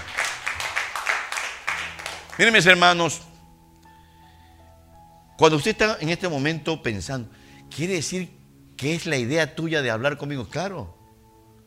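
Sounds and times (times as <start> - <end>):
small group applause: 0.0 - 2.8
speech: 2.4 - 3.3, 5.4 - 11.0.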